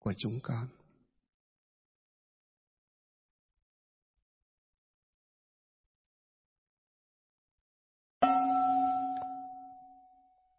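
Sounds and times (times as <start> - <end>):
speech: 0.0 - 0.8
single bell struck with a clear sustained tone: 8.2 - 10.3.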